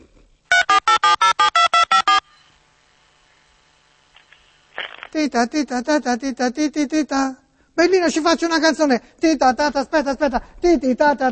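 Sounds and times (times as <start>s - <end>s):
faint hum: 0.0s - 11.3s
mobile phone call tone electronic beeps: 0.5s - 2.5s
speech: 5.2s - 11.3s.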